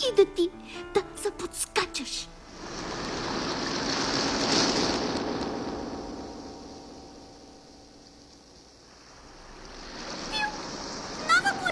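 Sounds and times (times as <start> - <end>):
speech: 0.1 - 0.6
ocean surf: 2.4 - 11.6.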